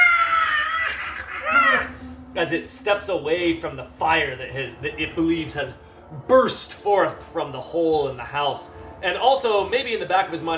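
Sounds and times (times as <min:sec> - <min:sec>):
voice imitating the screech of a knobbly vine blight monster: 0:00.0 - 0:02.1
speech: 0:02.4 - 0:10.5.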